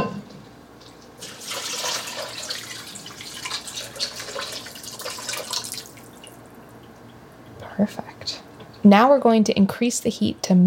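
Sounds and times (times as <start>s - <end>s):
water pouring into a pasta pot: 1.2s - 7.2s
speech: 7.8s - 8.0s, 8.8s - 10.6s.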